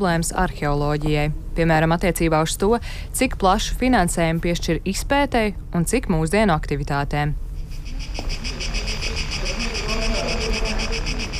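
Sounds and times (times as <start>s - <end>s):
speech: 0.0s - 7.4s
grasshopper-like chirping played through a megaphone: 7.7s - 11.3s
faint low murmur of voices: 8.4s - 11.3s.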